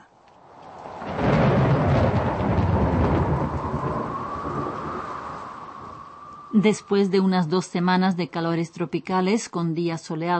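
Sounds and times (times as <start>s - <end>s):
torrential rain during a storm in the Czech Republic: 0.0s - 8.0s
thunder rumbling during a storm in the Czech Republic: 0.5s - 8.7s
speech: 6.6s - 10.3s.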